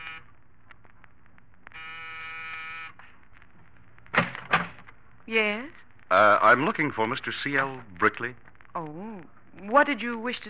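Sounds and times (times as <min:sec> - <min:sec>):
apartment door buzzer in an apartment building corridor: 0:00.0 - 0:00.2, 0:01.8 - 0:03.0
sharp loud clunks: 0:04.1 - 0:04.8
speech: 0:05.3 - 0:10.4.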